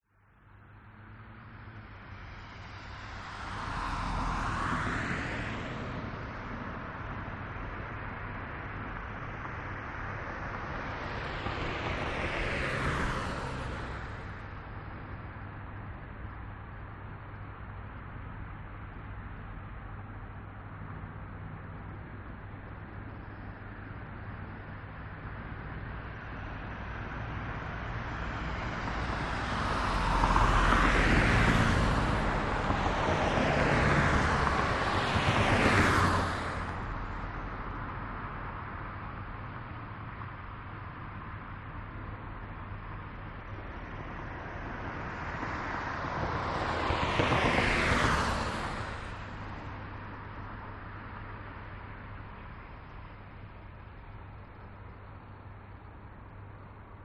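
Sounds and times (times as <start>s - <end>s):
night boulevard ambience: 0.1s - 57.0s.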